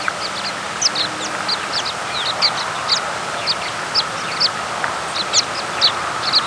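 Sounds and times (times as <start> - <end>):
American pipit short sharp high chip calls: 0.0 - 6.4
steady mid-pitched hum: 0.0 - 6.4.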